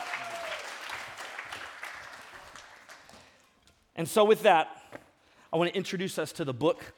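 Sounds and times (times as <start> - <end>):
audience applause: 0.0 - 3.3
speech: 4.0 - 4.8, 5.5 - 6.9.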